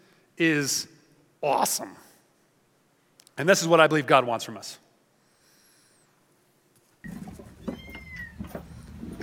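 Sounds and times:
steady noise: 0:00.0 - 0:09.2
speech: 0:00.4 - 0:02.1, 0:03.4 - 0:04.8
kitten meowing in short high wavering cries: 0:07.7 - 0:08.4.

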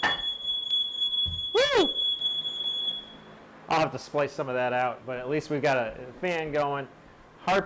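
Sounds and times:
smoke detector alarm beeping: 0:00.0 - 0:03.4
speech: 0:03.8 - 0:07.6.

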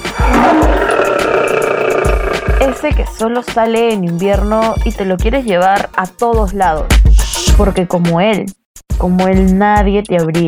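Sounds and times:
tiger roaring: 0:00.0 - 0:02.9
speech: 0:02.9 - 0:10.4.

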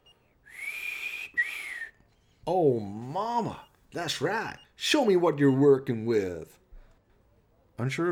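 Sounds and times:
low breathy whistle: 0:00.0 - 0:02.4
speech: 0:02.4 - 0:06.6, 0:07.8 - 0:08.1.

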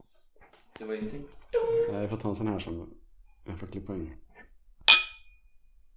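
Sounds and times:
speech: 0:00.8 - 0:04.2
drinking glasses clinking in a toast: 0:04.9 - 0:05.3.

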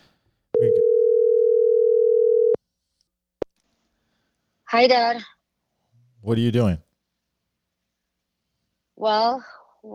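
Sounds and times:
ringback tone of an outgoing phone call: 0:00.6 - 0:02.6
speech: 0:04.7 - 0:05.4, 0:06.2 - 0:06.8, 0:09.0 - 0:09.9.

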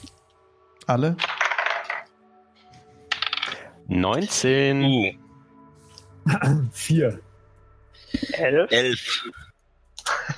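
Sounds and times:
speech: 0:00.9 - 0:01.3, 0:03.9 - 0:05.2, 0:06.3 - 0:07.3, 0:08.1 - 0:09.5
dice rolling on a table for a tabletop role-playing game: 0:01.2 - 0:02.1, 0:03.1 - 0:03.6.

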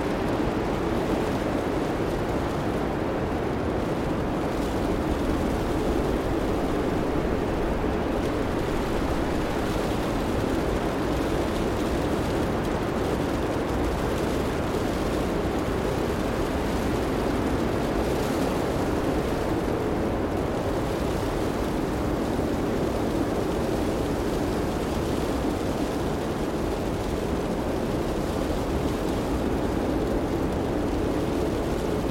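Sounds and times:
snowstorm wind roaring: 0:00.0 - 0:32.0.

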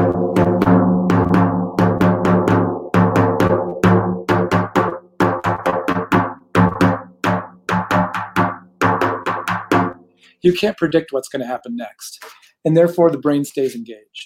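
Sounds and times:
hand drum playing a syncopated shamanic rhythm: 0:00.0 - 0:10.1
speech: 0:10.4 - 0:14.2.

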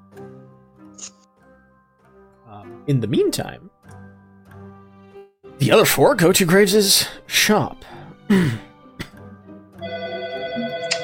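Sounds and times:
speech: 0:02.8 - 0:03.8, 0:05.6 - 0:08.7
phone ringtone with bright electronic tones: 0:09.8 - 0:11.0.

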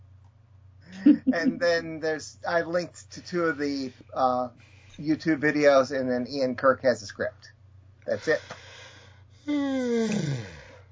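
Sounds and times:
speech: 0:01.1 - 0:08.6, 0:09.5 - 0:10.6
person yawning: 0:09.4 - 0:10.8.

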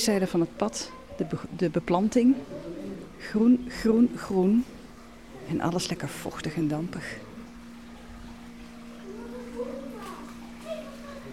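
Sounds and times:
speech: 0:00.0 - 0:04.8, 0:05.5 - 0:07.3
steady low hum: 0:00.0 - 0:11.3
faint children's voices in a butterfly house: 0:00.2 - 0:01.6, 0:08.6 - 0:11.3.

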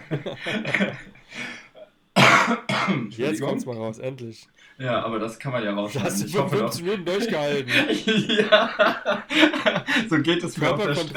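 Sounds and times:
laughter: 0:00.0 - 0:01.7, 0:03.1 - 0:04.4, 0:05.9 - 0:11.1
speech: 0:00.1 - 0:01.6, 0:02.5 - 0:11.1
loud harsh coughs: 0:02.2 - 0:03.6.

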